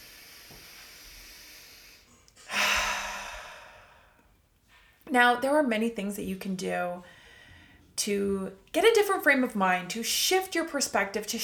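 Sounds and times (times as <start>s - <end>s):
deep breath in through the nose and out through the mouth during a guided breathing exercise: 0.0s - 4.2s
speech: 5.1s - 7.2s, 8.0s - 11.4s.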